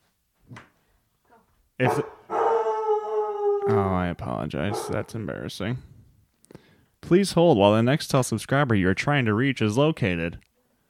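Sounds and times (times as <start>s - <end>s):
speech: 1.8s - 2.2s, 3.7s - 5.9s, 7.1s - 10.5s
dog barking and howling: 1.8s - 4.0s, 4.6s - 5.2s.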